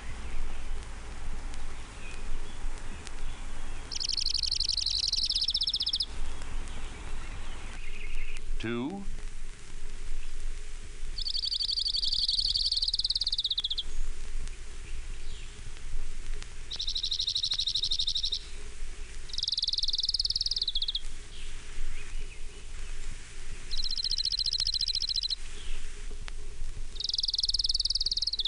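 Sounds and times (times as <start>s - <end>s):
Orange-crowned warbler song with high buzzy trills: 0.0s - 9.0s, 10.0s - 28.4s
speech: 8.6s - 9.2s.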